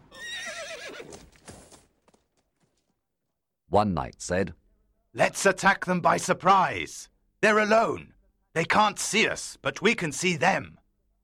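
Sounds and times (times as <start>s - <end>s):
horse whinnying across a river: 0.0s - 1.4s
horse hooves clopping: 0.0s - 3.0s
speech: 3.7s - 4.6s, 5.2s - 10.8s.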